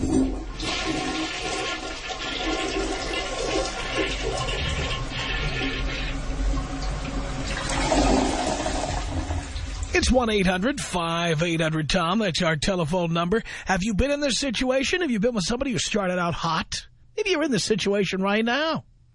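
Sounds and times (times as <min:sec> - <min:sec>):
toilet flushing: 0:00.0 - 0:10.6
speech: 0:10.1 - 0:18.9.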